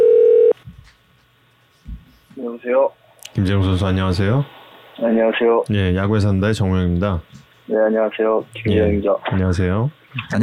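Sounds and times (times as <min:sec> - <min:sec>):
telephone call connecting tone: 0:00.0 - 0:00.6
speech: 0:02.4 - 0:10.4.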